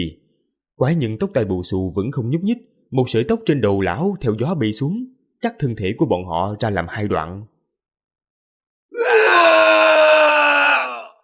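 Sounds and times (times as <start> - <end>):
speech: 0.0 - 0.2, 0.8 - 7.5
two men screaming in pain and terror: 9.0 - 11.2.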